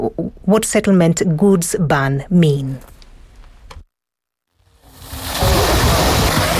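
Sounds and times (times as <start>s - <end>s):
speech: 0.1s - 2.9s
people splashing water in a swimming pool on a sweltering day: 4.8s - 6.5s.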